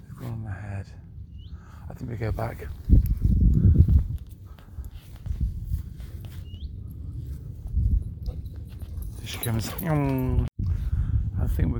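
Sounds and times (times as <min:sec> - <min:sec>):
faint bird chirp: 0:01.3 - 0:01.8, 0:06.3 - 0:06.9
speech: 0:01.9 - 0:03.1, 0:09.4 - 0:10.5, 0:11.5 - 0:11.7
wild horses' hooves thudding on soft wetland ground: 0:02.6 - 0:10.3.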